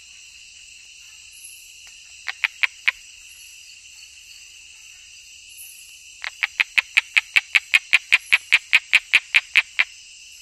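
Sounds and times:
Osteocephalus tree frog calling in the Ecuadorian Amazon: 1.8 - 3.0, 6.2 - 9.9.

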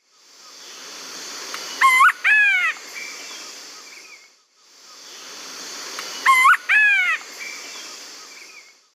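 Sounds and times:
Celeus grammicus call in the Eastern Lowlands of South America: 1.8 - 2.9, 6.2 - 7.6.

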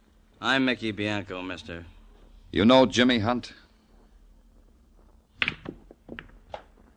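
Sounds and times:
speech: 0.4 - 3.6
pool balls clacking on a billiard table: 5.4 - 6.8.

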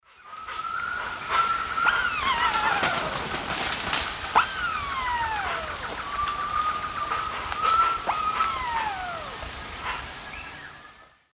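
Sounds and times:
female Crax globulosa calls in the Eastern Lowlands of South America: 0.1 - 11.3.

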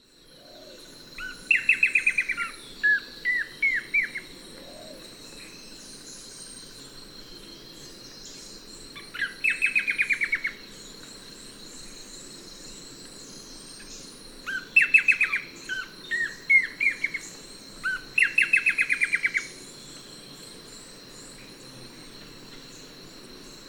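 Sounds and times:
steady thin high-pitched insect-like whine: 0.0 - 23.6
blackish antbird song of high descending whistled notes: 1.2 - 20.1.

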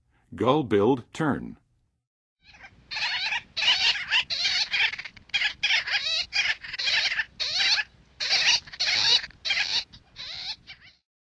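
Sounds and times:
Gull-billed Tern calling in the western USA: 2.4 - 11.0.

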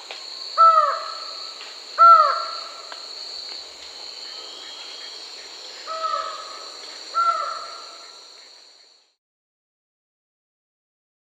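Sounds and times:
lined forest-falcon call: 0.6 - 2.9, 4.2 - 8.3.

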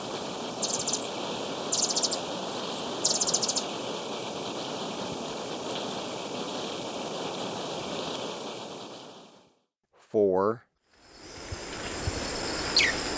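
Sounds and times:
Ecuadorian piedtail calling with high squeaky notes and buzzy rattles: 0.0 - 3.9, 5.5 - 6.1, 7.3 - 7.8, 11.9 - 13.1
steady background hiss: 0.0 - 9.5, 11.0 - 13.1
speech: 10.2 - 10.6.

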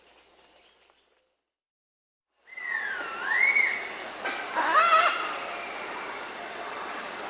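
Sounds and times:
Dusky-tailed Flatbill Ramphotrigon fuscicauda calling in Bolivia or Peru: 2.5 - 7.2.

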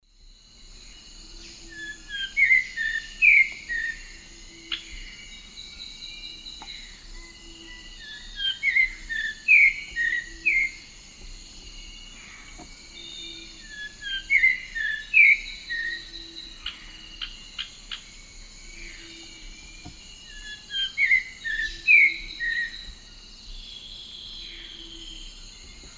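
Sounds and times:
Habia rubica song: 0.2 - 25.9
Habia rubica calls: 1.5 - 5.5, 6.3 - 18.1, 18.7 - 23.0.

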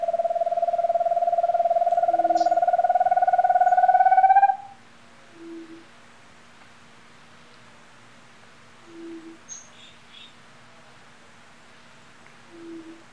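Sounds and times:
giant antpitta song of hollow notes rising in pitch in Ecuador: 0.0 - 4.7
soft low hoots: 0.0 - 5.9, 8.8 - 9.4, 12.5 - 13.1.

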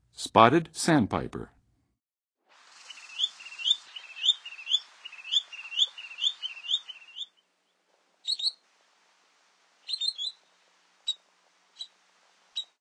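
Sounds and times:
Spotted Sandpiper calling: 2.7 - 7.4, 8.2 - 8.6, 9.8 - 12.7.

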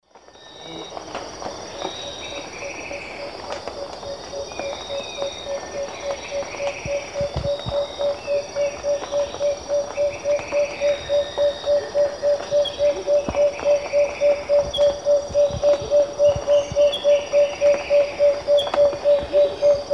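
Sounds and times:
Megascops watsonii song in South American eastern lowlands: 1.7 - 19.9.

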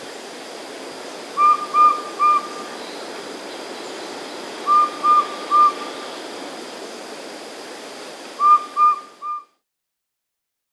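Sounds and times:
subtropical pygmy owl whistled call in South America: 1.4 - 3.0, 4.5 - 6.3, 8.4 - 9.5.

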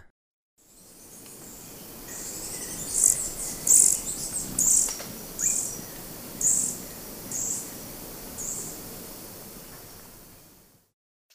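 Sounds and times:
velvet-purple coronet chip calls in Ecuador: 0.7 - 8.9
faint hiss: 0.7 - 10.9.

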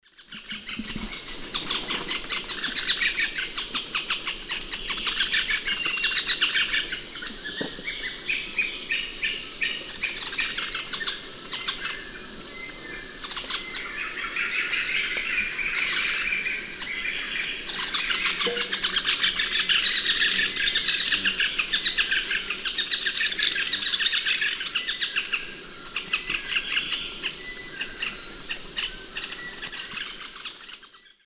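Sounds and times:
Monasa flavirostris group calls in the Eastern Lowlands of S. America: 0.4 - 30.9.

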